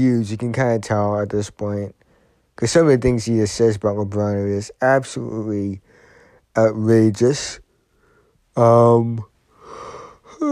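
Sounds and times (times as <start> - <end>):
speech: 0.0 - 2.0, 2.6 - 5.9, 6.6 - 7.6, 8.6 - 9.3
person yawning loudly: 9.6 - 10.5.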